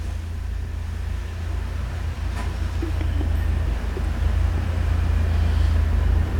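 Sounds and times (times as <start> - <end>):
drinks delivery truck engine rumbling as it starts reverses and turns: 0.0 - 6.3
street noise on boulevard Saint-Germain: 0.0 - 6.3
laughter: 2.6 - 5.0.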